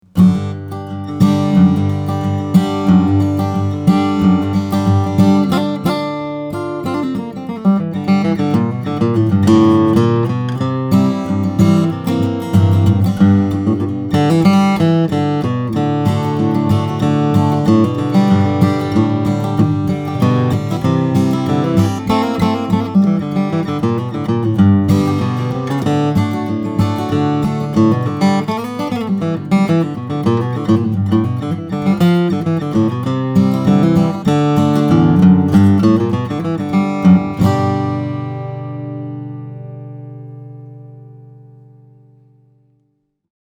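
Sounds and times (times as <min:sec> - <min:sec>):
steel-string flattop guitar: 0:00.0 - 0:43.0.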